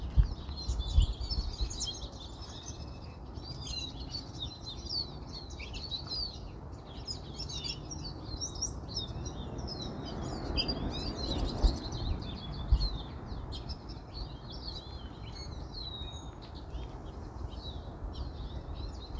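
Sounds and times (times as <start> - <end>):
birds chirping chorus: 0.0 - 19.1.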